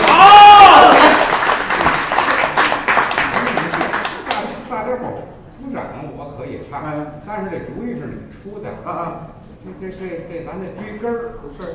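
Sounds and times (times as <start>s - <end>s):
crowd applauding at a crosstalk comedy performance: 0.0s - 4.6s
speech: 9.8s - 11.7s.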